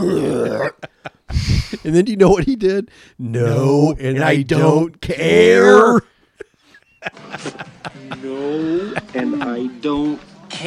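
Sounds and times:
man belching in a bar in a film scene: 0.0 - 0.8, 3.3 - 6.1
laughter: 0.5 - 1.3, 6.4 - 10.0
short quieter breathy bursts: 1.3 - 1.9
speech: 1.8 - 6.1, 7.0 - 10.6.

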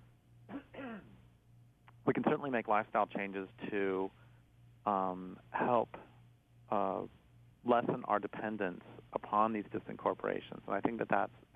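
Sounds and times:
steady low electrical hum: 0.0 - 11.5
person coughing: 0.5 - 1.1
speech: 2.1 - 4.2, 4.8 - 6.0, 6.7 - 11.5.

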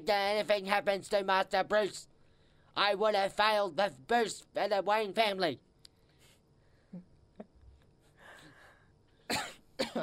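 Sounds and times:
speech: 0.0 - 2.1, 2.8 - 5.7
person coughing: 9.3 - 10.0.

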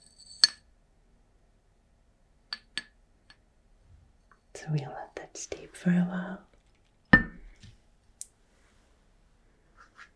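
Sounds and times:
speech: 4.6 - 6.5
ceramic tea cup clinking against a kettle: 7.2 - 7.4.

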